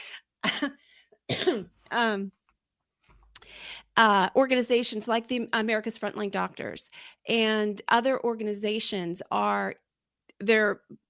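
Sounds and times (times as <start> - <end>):
sharp coughs: 0.5 - 1.8
speech: 0.6 - 0.8, 1.5 - 2.4, 4.0 - 9.8, 10.4 - 11.0.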